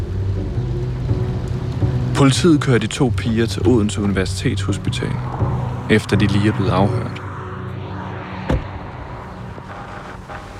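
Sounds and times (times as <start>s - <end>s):
steady rain: 0.0s - 6.3s, 9.6s - 10.5s
speech: 2.2s - 7.2s.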